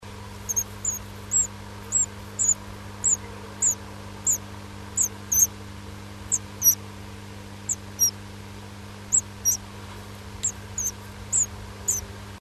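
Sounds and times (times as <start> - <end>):
steady low hum: 0.0 - 12.3
high thin bird squeaks in a nest box: 0.5 - 4.4, 5.0 - 5.5, 6.3 - 6.8, 7.7 - 8.2, 9.1 - 9.6, 10.4 - 12.0.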